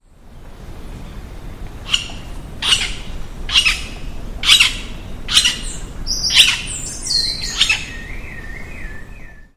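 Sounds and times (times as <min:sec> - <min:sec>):
Celeus flavescens call: 0:01.8 - 0:09.4.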